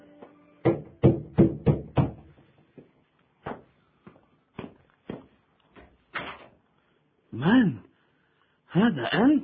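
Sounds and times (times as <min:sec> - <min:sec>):
firm knocks on a wooden door: 0:00.6 - 0:02.3
speech: 0:08.8 - 0:09.4.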